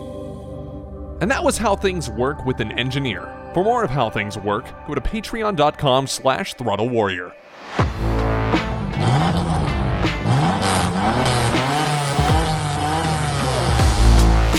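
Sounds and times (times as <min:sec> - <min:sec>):
speech: 0:01.2 - 0:08.6
TVR 280i sports car engine revving through gear changes: 0:07.8 - 0:14.5
sports car tire squeal: 0:09.0 - 0:13.9.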